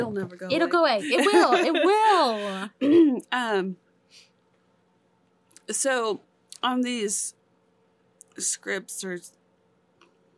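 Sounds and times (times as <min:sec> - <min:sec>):
speech: 0:00.0 - 0:04.3, 0:05.7 - 0:07.4, 0:08.4 - 0:09.4
laughter: 0:01.0 - 0:02.7
person coughing throatily: 0:02.8 - 0:03.2.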